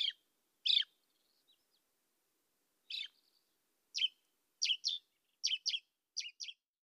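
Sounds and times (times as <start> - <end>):
marsh warbler, Acrocephalus palustris palustris, giving sharp calls: 0.0 - 0.9, 2.9 - 3.2, 4.0 - 6.6.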